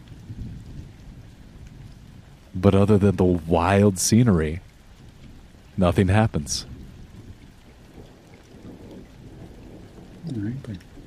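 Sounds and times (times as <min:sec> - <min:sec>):
deep rolling rumble of thunder: 0:00.0 - 0:03.1, 0:05.3 - 0:11.0
constant wash of rain: 0:00.0 - 0:11.0
speech: 0:02.6 - 0:04.7, 0:05.8 - 0:06.7, 0:10.3 - 0:10.9.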